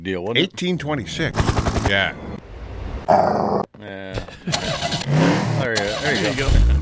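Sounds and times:
speech: 0.0s - 2.3s, 3.1s - 6.8s
person vocally imitating an internal combustion engine starting: 4.5s - 6.8s.

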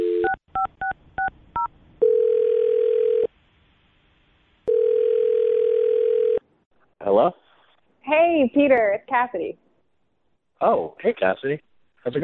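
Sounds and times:
steady phone-line tone: 0.0s - 0.7s, 2.0s - 3.3s, 4.7s - 6.4s
speech: 7.2s - 7.4s, 8.3s - 9.7s, 10.6s - 12.2s.

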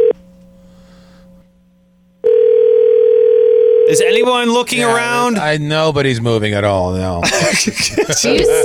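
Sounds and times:
telephone ringback tone over a phone line: 2.2s - 4.0s, 8.4s - 8.6s
speech: 3.9s - 8.6s
laughter: 7.2s - 8.6s.

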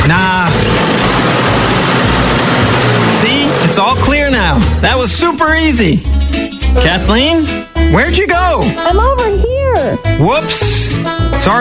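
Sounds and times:
snow blower engine roaring on a small driveway: 0.0s - 5.6s
speech: 0.1s - 0.4s, 3.8s - 11.5s.

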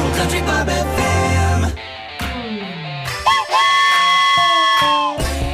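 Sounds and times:
speech: 0.2s - 1.0s
steam train whistle chord-like blast: 3.2s - 5.4s.

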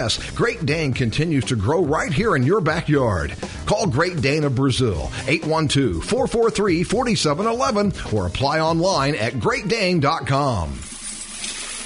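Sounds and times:
speech: 0.0s - 10.9s
coins poured down a drain: 10.8s - 11.8s.

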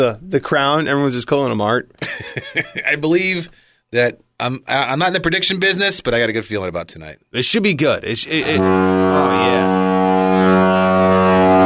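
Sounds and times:
speech: 0.0s - 10.9s
deep foghorn blast: 8.2s - 11.6s.

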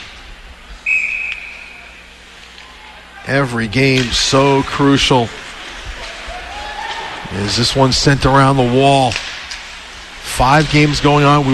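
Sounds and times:
low arena noise: 0.0s - 11.5s
referee's whistle blast at an ice hockey game called for offside: 0.8s - 1.9s
speech: 3.2s - 5.4s, 7.3s - 9.2s, 10.4s - 11.5s.

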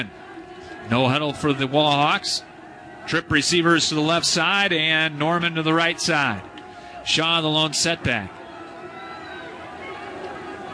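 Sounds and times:
speech: 0.0s - 0.2s, 0.8s - 2.5s, 3.1s - 8.4s
stadium crowd roar at a football game: 0.0s - 10.7s.

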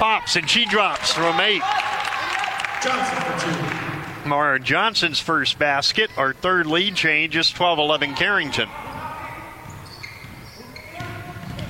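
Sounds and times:
crowd noise at a women's basketball game: 0.0s - 11.6s
speech: 0.2s - 1.9s, 2.8s - 8.9s
basketball dribbled with the left hand during a women's game: 8.8s - 11.6s.

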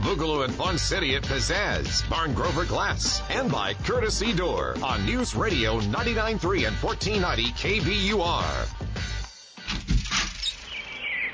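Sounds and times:
speech: 0.2s - 8.8s
birds chirping in early spring: 10.3s - 11.3s.

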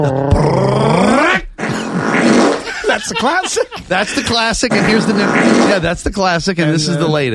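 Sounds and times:
loud buzzing fart rising in pitch: 0.0s - 2.7s, 4.6s - 5.9s
laughter: 2.6s - 6.0s
speech: 3.1s - 7.3s.

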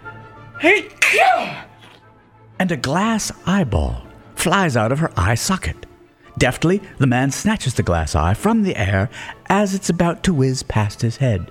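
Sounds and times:
speech: 0.6s - 1.7s, 2.6s - 11.5s
woman sneezing in a hotel restaurant: 0.6s - 2.0s.

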